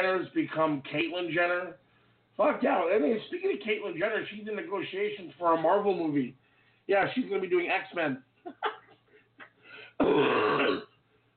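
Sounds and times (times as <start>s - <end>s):
speech: 0.0s - 1.8s, 2.4s - 8.8s, 10.0s - 10.8s
person coughing: 10.0s - 10.9s.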